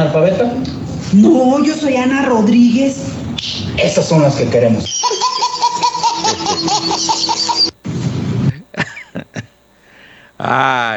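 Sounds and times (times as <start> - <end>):
speech: 0.0 - 5.2, 10.4 - 10.9
person laughing brightly: 5.0 - 7.7, 8.4 - 9.6.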